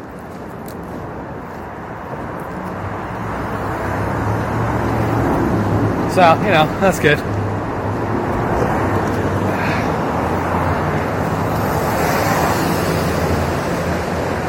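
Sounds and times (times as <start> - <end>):
loud car passing: 2.7 - 14.4
speech: 6.2 - 7.4.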